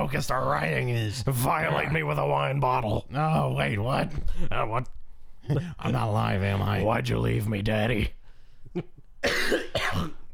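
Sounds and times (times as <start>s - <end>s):
speech: 0.1s - 10.2s
faint throaty breaths: 8.2s - 8.8s
person coughing harshly: 9.2s - 10.3s.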